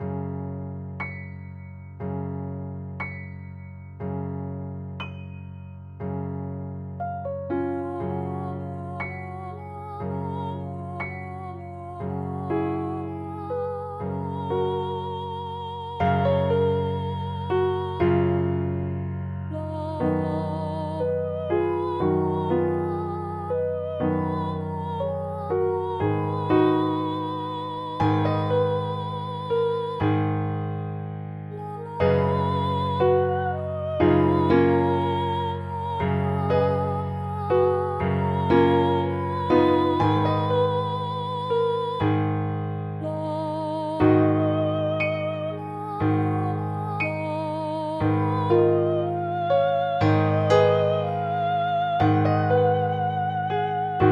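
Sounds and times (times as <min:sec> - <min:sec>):
piano: 0:00.0 - 0:54.1
high voice singing: 0:07.8 - 0:18.1, 0:19.5 - 0:30.1, 0:31.5 - 0:42.1, 0:43.0 - 0:54.1.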